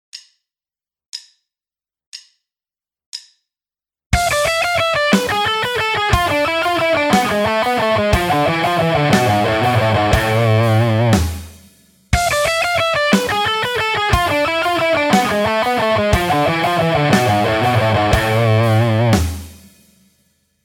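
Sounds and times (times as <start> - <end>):
guitar alternate picking: 4.2 - 11.4, 12.3 - 19.3.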